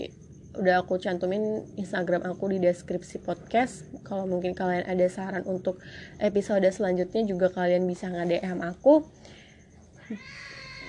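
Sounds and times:
speech: 0.0s - 9.4s, 10.1s - 10.5s
low hum: 0.0s - 10.8s
cat meowing: 10.1s - 10.8s.

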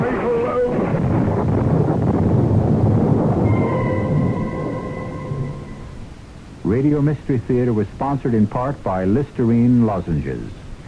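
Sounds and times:
thunderstorm thunder rumbling outside Hartford by the Connecticut River: 0.0s - 7.2s
gusting wind outside Hartford by the Connecticut River: 0.0s - 7.9s
faint sustained high tones: 3.4s - 6.5s
speech: 6.8s - 10.6s.

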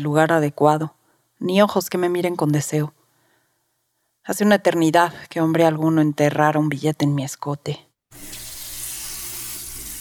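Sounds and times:
speech: 0.0s - 3.0s, 4.2s - 8.4s
shower water running in the morning: 8.1s - 9.9s.

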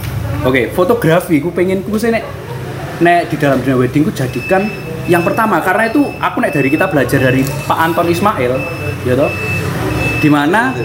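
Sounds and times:
speech: 0.4s - 9.5s, 10.2s - 10.8s
prepaid electricity meter beeping: 3.4s - 10.8s.

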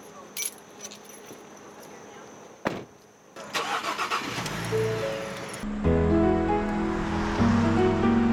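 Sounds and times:
thump: 2.6s - 2.9s
public-transit van engine rumbling in the Poconos: 3.4s - 8.3s.

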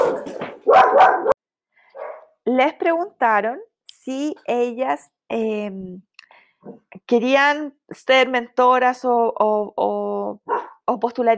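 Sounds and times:
dogs barking: 0.0s - 2.3s, 10.5s - 10.8s
speech: 2.5s - 11.3s.

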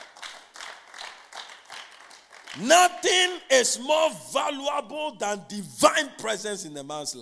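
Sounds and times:
audience clapping in a steady rhythm: 0.0s - 3.5s
speech: 2.6s - 7.2s.

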